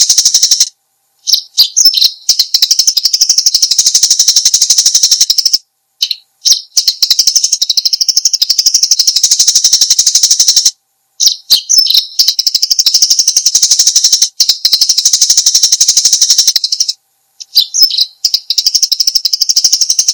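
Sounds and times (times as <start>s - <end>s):
Eurasian tree sparrow giving rapid high chirps: 0.0s - 20.1s.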